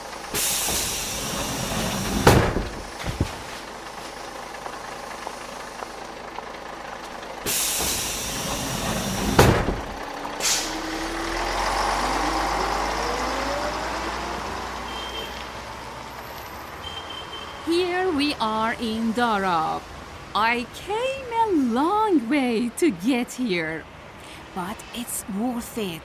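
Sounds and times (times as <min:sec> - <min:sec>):
large bus engine idling: 0:00.0 - 0:26.0
bus air brakes hissing: 0:00.2 - 0:03.7, 0:07.4 - 0:10.9
speech: 0:18.4 - 0:21.1, 0:21.7 - 0:24.0, 0:24.6 - 0:26.0.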